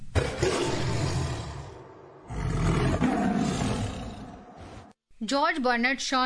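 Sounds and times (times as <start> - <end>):
tiger roaring: 0.0 - 4.9
speech: 5.2 - 6.2.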